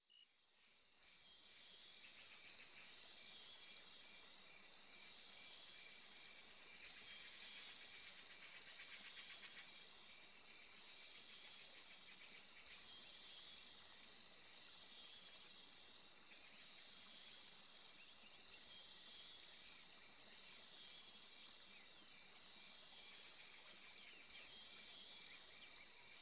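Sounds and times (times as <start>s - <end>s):
Indian rainforest ambience: 0.0s - 26.1s.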